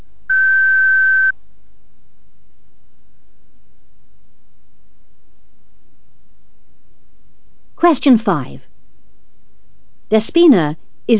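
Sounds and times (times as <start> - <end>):
answering machine tone on a college telephone line: 0.3 - 1.3
speech: 7.9 - 8.7, 10.1 - 11.1.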